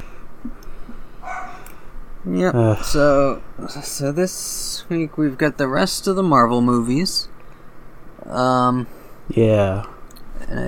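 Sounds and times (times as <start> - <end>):
faint hum: 0.0 - 10.6
dog barking: 1.2 - 1.6
speech: 2.2 - 7.3, 8.3 - 10.6.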